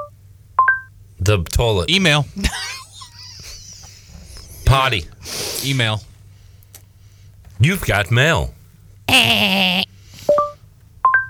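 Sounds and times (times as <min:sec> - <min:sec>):
Google search tone on a phone: 0:00.0 - 0:00.9, 0:10.3 - 0:11.2
speech: 0:01.2 - 0:02.7, 0:04.7 - 0:06.1, 0:07.6 - 0:09.9
laughter: 0:02.4 - 0:05.1.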